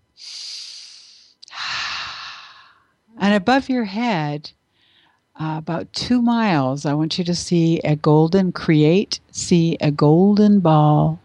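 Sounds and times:
deep breath: 0.2 - 2.9, 4.7 - 5.2
speech: 3.2 - 4.6, 5.4 - 11.2.

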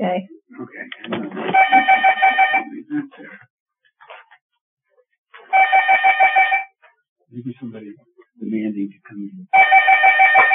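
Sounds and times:
people talking: 0.0 - 3.4, 7.3 - 9.5
telephone ringing with trilling bursts: 1.5 - 2.7, 5.5 - 6.8, 9.5 - 10.5.

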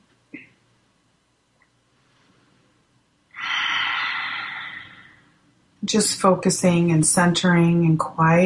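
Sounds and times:
deep breath in during a guided meditation: 3.4 - 5.3
speech: 5.8 - 8.4.

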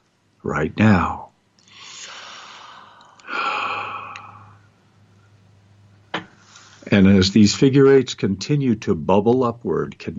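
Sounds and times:
speech: 0.4 - 1.2, 6.9 - 10.1
person taking deep breaths during a guided meditation: 1.6 - 4.7.

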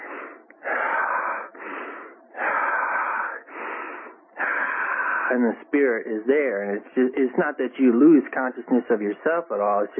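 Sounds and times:
heavy rasping breathing: 0.0 - 5.4
speech: 5.3 - 9.9.

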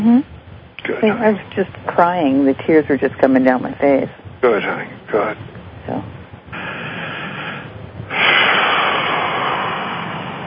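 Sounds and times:
speech: 1.0 - 6.0
slow heavy breathing: 6.5 - 10.4.

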